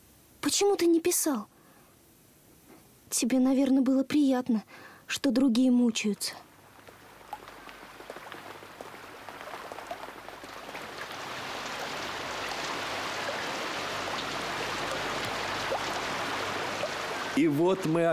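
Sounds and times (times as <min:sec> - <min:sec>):
speech: 0:00.5 - 0:01.6, 0:03.1 - 0:06.5, 0:17.4 - 0:18.1
rain falling: 0:06.4 - 0:18.1.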